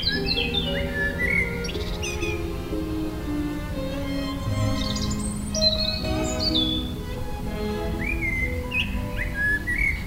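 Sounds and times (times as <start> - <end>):
blackbird singing outdoors: 0.0 - 2.7, 4.5 - 7.2, 7.8 - 10.0
European robin singing outdoors: 0.0 - 10.0.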